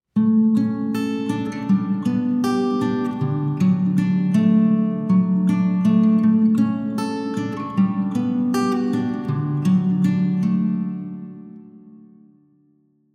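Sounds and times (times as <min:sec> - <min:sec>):
guitar in St. Andrews Church: 0:00.1 - 0:13.1.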